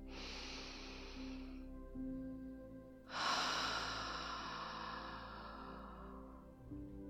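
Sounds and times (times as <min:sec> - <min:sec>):
slow deep breathing in and out: 0:00.1 - 0:01.7, 0:03.0 - 0:06.9.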